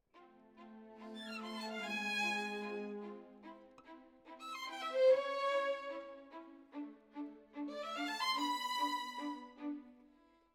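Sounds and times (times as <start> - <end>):
solo violin: 0.0 - 10.5.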